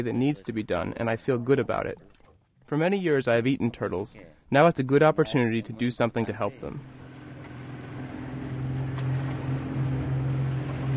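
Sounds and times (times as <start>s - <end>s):
speech: 0.0s - 7.0s
boat engine droning across the open sea: 6.8s - 10.9s
water rushing past a boat at sea: 6.8s - 10.9s.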